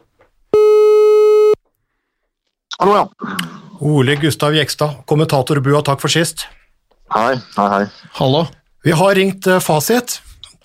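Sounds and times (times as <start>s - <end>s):
telephone ringing tone of an outgoing phone call: 0.6s - 1.6s
speech: 2.8s - 10.3s.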